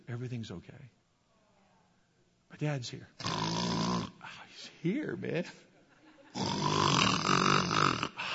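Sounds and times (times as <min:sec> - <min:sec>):
speech: 0:00.2 - 0:01.0, 0:02.6 - 0:05.7, 0:06.4 - 0:06.7
man snoring with rasping inhale: 0:03.2 - 0:04.2, 0:06.4 - 0:08.3.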